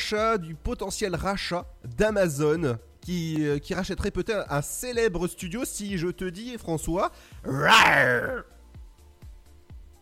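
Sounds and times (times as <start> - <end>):
speech: 0.1 - 8.5
person imitating a lion's roar: 7.5 - 8.5.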